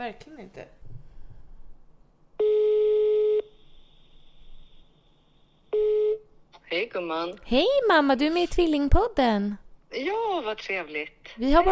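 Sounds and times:
speech: 0.0s - 0.8s, 6.9s - 11.6s
faint noise: 0.0s - 11.6s
telephone ringback tone while an outgoing phone call connects: 2.4s - 3.6s, 5.7s - 6.3s.

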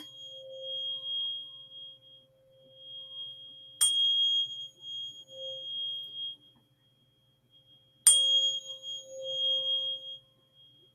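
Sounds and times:
528 Hz sine tone played from a phone: 0.0s - 10.9s.

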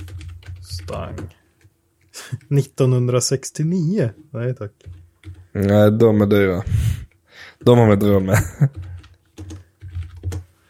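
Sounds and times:
typing a search on a computer keyboard: 0.0s - 2.6s, 4.8s - 6.2s, 7.6s - 10.5s
speech: 0.8s - 1.4s, 2.4s - 5.0s, 5.6s - 6.8s, 7.6s - 8.9s.

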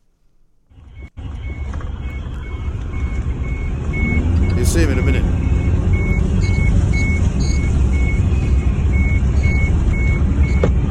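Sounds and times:
combine harvester engine droning in a field in the countryside: 0.5s - 10.8s
reversing alarm beeping: 0.7s - 10.8s.

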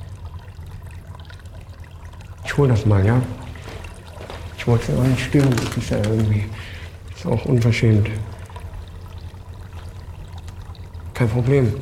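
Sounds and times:
aquarium water bubbling and gurgling in a restaurant: 0.0s - 11.8s
speech: 2.5s - 3.4s, 4.7s - 8.4s, 11.2s - 11.8s.

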